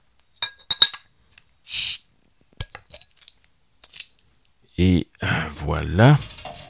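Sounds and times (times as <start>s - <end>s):
beer bottle cap coming off with a hiss: 1.7s - 2.0s
speech: 4.8s - 6.3s.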